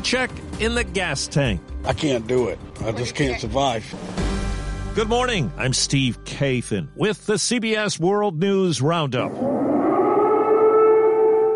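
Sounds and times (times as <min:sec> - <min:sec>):
speech: 0:00.0 - 0:04.3, 0:05.0 - 0:09.7
air raid siren wailing in Kiev Ukraine: 0:09.3 - 0:11.5.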